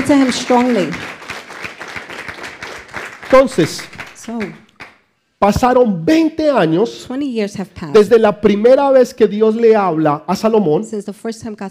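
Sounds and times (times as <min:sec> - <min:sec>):
audience applauding: 0:00.0 - 0:05.0
speech: 0:00.1 - 0:01.2, 0:03.3 - 0:04.6, 0:05.4 - 0:11.6.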